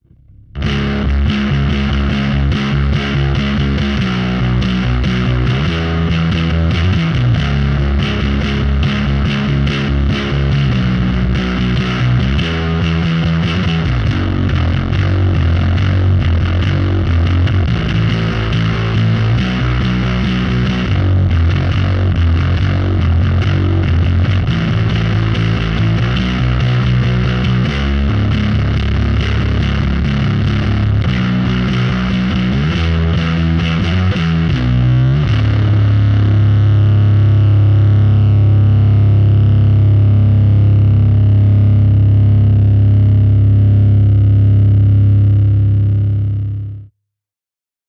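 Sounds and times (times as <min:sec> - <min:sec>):
flat bass tone with no boost: 0:00.0 - 0:46.9.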